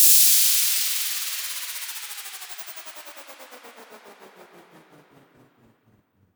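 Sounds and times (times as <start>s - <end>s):
white noise down sweep effect for house music: 0.0s - 4.2s.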